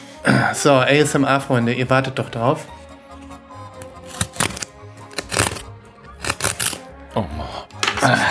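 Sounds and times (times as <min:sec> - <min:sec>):
speech: 0:00.5 - 0:02.8, 0:07.2 - 0:07.4, 0:08.0 - 0:08.2
blade slitting open a sticker seal: 0:03.7 - 0:06.9.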